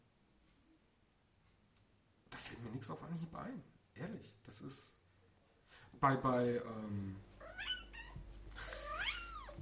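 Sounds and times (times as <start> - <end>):
speech: 2.7 - 5.0, 5.7 - 7.3
cat meowing: 7.4 - 9.6.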